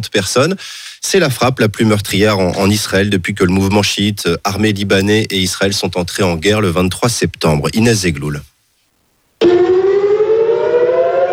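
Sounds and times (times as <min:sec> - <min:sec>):
speech: 0:00.0 - 0:08.5, 0:09.4 - 0:09.7
civil defense air raid siren wailing at night in Haifa Israel: 0:09.4 - 0:11.3.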